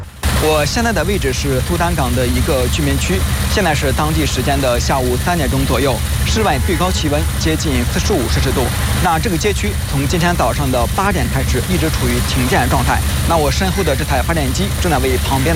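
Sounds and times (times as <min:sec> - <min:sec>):
electric generator running outdoors in a Port Sudan residential district: 0:00.0 - 0:15.5
people talking: 0:00.0 - 0:15.5.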